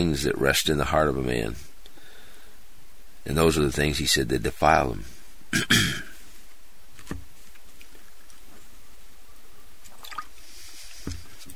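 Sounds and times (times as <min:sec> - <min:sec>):
speech: 0:00.0 - 0:01.7, 0:03.2 - 0:06.1
soft swallowing or sipping sounds: 0:05.5 - 0:06.2
brief splashy burst of drinking water: 0:09.8 - 0:11.5.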